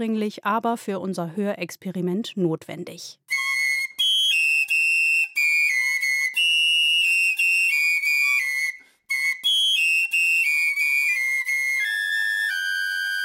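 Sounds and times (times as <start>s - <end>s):
speech: 0.0s - 3.2s
several high piccolo flute tones played together: 3.3s - 13.2s.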